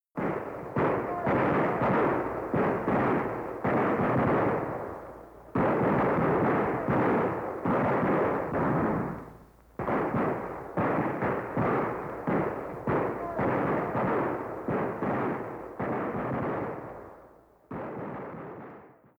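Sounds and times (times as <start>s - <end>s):
distant gunshots: 0.2s - 19.1s.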